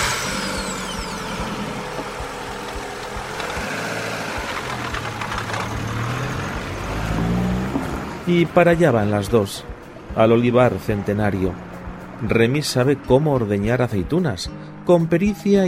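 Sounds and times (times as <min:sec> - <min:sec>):
car engine idling in a tiny rural village: 0:00.0 - 0:10.1
speech: 0:08.3 - 0:15.6.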